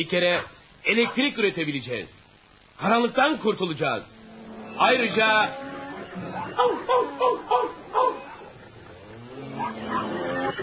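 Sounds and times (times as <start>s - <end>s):
speech: 0.0s - 2.2s, 2.8s - 4.2s, 4.8s - 8.3s, 9.6s - 10.6s
dogs barking aggressively in a farm barn: 6.1s - 10.6s.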